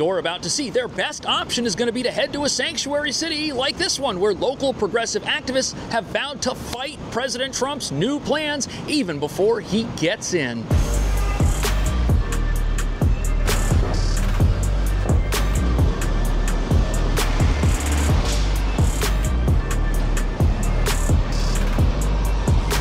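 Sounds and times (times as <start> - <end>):
speech: 0.0 - 11.0
passing vehicle traffic at a bus terminal: 5.5 - 22.7
steady low bus engine rumble at a bus terminal: 10.7 - 22.7.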